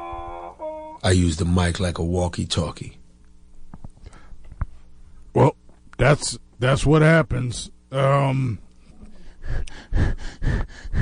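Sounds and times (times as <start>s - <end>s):
speech: 1.0s - 3.0s, 6.1s - 8.7s
heavy rapid gasping breathing: 9.1s - 10.9s.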